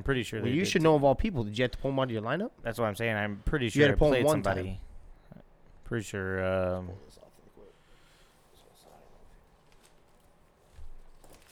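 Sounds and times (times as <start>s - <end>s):
speech: 0.0s - 4.9s, 5.9s - 7.2s
paper rustling and shuffling as a sheet is moved: 9.5s - 11.4s.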